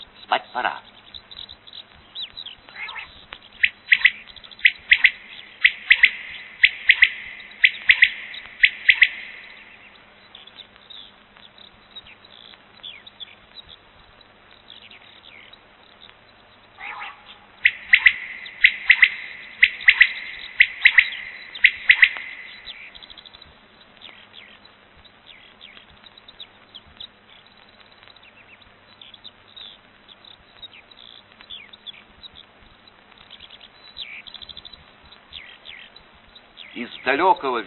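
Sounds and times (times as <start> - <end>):
common quail calling in an open field: 0.0 - 10.6, 16.8 - 27.4, 33.2 - 37.6
speech: 0.5 - 0.9, 36.8 - 37.6.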